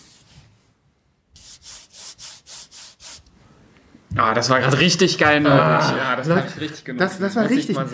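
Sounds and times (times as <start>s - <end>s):
fingers rubbing a matte vinyl record sleeve: 1.4s - 3.3s
speech: 4.2s - 7.9s.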